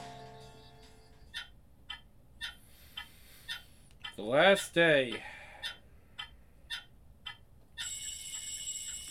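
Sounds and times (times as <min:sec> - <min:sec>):
clock ticking: 0:01.4 - 0:02.1, 0:04.0 - 0:04.2, 0:06.2 - 0:07.4
speech: 0:04.2 - 0:05.4
alarm clock ringing: 0:07.8 - 0:09.0.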